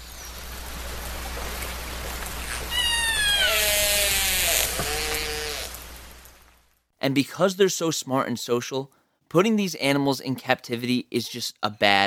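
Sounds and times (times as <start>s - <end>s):
steady watery hiss: 0.0s - 6.4s
killer whale calls and whistles: 2.4s - 5.8s
speech: 7.1s - 12.0s.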